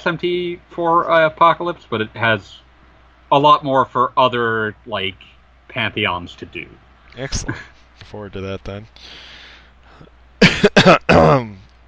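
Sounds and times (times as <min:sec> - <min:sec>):
speech: 0:00.0 - 0:02.6, 0:03.3 - 0:09.3, 0:10.8 - 0:11.8
person coughing harshly: 0:10.4 - 0:11.6
rough throaty throat clearing: 0:10.4 - 0:11.6.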